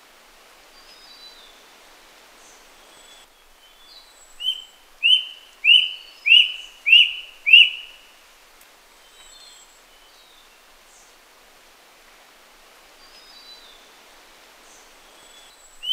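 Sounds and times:
faint hiss: 0.0 - 15.9
rusty-breasted cuckoo high whistled call: 4.4 - 8.0.

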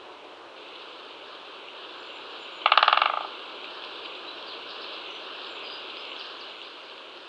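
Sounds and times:
great spotted woodpecker drumming: 2.6 - 3.3.

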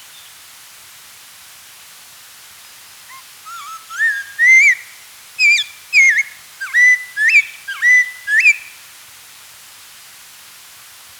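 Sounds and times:
spotted laughingthrush song of loud rich whistled notes: 3.1 - 8.8.

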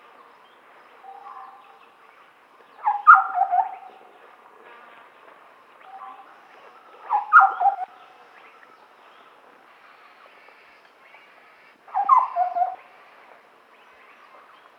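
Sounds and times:
steady background noise: 0.0 - 14.7
large scimitar babbler calls: 2.8 - 3.9, 7.1 - 7.9, 11.9 - 12.8.

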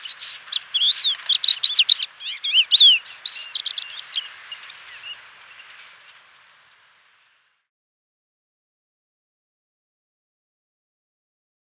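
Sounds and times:
crested lark whistled notes and twittering: 0.0 - 6.6.

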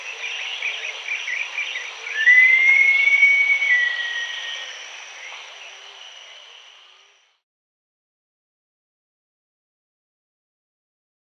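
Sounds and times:
green-backed kingfisher whistle call: 2.2 - 4.7.

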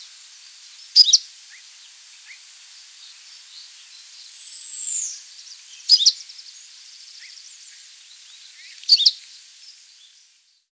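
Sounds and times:
background hiss: 0.0 - 10.7
Hume's leaf warbler call: 0.8 - 1.3, 3.5 - 9.3.

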